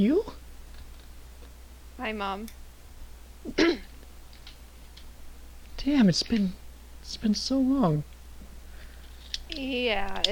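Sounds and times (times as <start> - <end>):
speech: 0.0 - 0.4, 2.0 - 2.6, 3.4 - 3.9, 5.8 - 8.1, 9.5 - 10.2
woman clearing her throat: 3.5 - 3.9.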